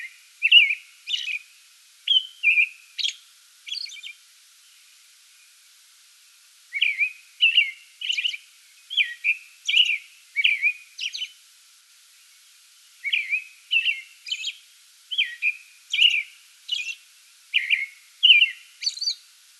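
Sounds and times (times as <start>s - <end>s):
American robin singing fluty caroled phrases: 0.0s - 1.5s, 2.1s - 4.8s, 6.7s - 11.4s, 13.0s - 19.2s.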